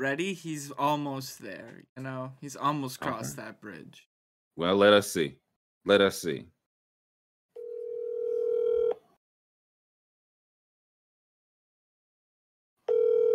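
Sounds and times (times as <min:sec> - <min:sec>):
speech: 0:00.0 - 0:06.6
outgoing phone call ringing tone: 0:07.6 - 0:09.0, 0:12.9 - 0:13.3.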